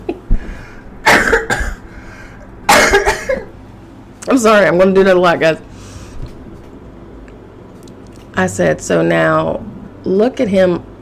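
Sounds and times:
woman coughing: 1.0 - 1.9, 2.6 - 3.6
speech: 1.5 - 1.8, 4.3 - 5.7, 8.4 - 10.9.

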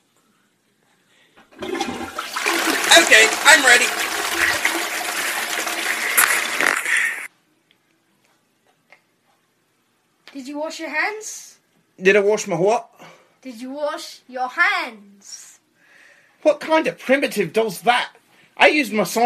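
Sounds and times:
toilet flushing with a gurgling rush of water: 1.4 - 7.3
speech: 3.5 - 4.8, 10.6 - 15.4, 16.4 - 19.2.

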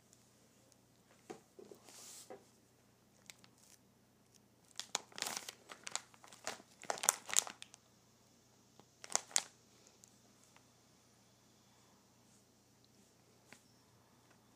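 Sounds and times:
faint steady low hum: 0.0 - 14.5
plastic bag of cloths crinkled and handled: 4.6 - 7.8, 9.0 - 9.6.

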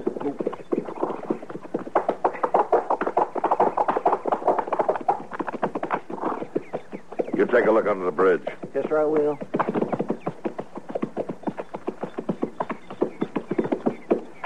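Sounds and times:
horse hooves clip-clopping on a hard surface: 0.0 - 14.4
speech: 7.5 - 9.5.

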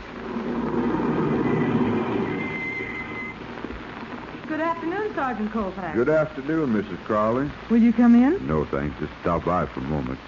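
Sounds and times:
car engine rumbling while driving up and stopping: 0.0 - 4.8
speech: 4.7 - 10.2.

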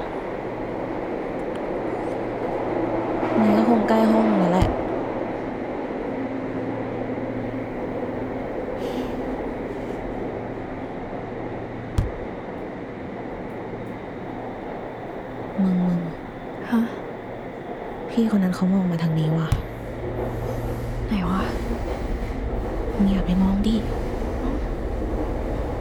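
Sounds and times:
subway train rumbling on rails: 0.0 - 25.7
metallic clunks of subway train: 12.0 - 12.3, 19.5 - 20.6
speech: 18.2 - 19.7, 23.0 - 24.0.

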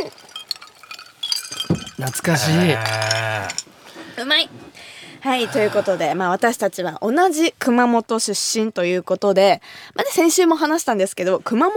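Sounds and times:
glasses clinking in a toast: 0.0 - 3.7
speech: 2.0 - 11.7.

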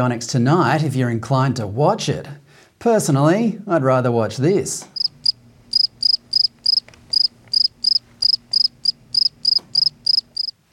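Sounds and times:
speech: 0.0 - 4.9
faint low hum: 0.0 - 10.7
cricket chirping: 5.0 - 10.6.

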